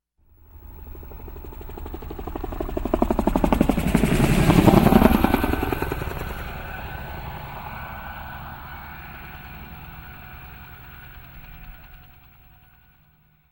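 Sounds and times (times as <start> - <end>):
helicopter flying past: 0.2 - 13.5.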